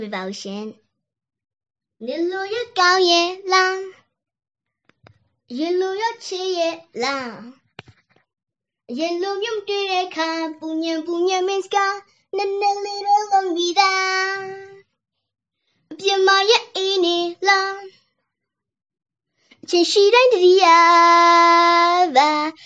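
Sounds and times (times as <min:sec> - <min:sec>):
girl singing recorded on a phone: 0:02.0 - 0:03.9, 0:05.5 - 0:07.6, 0:08.9 - 0:14.8, 0:15.9 - 0:18.0, 0:19.6 - 0:22.6.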